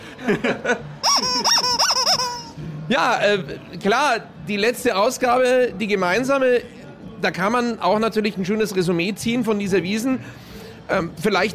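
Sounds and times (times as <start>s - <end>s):
laughter-like sounds: 0.0s - 2.5s
speech: 0.2s - 1.0s, 2.9s - 11.5s
rubber squeaky toy squeaking: 1.0s - 2.6s.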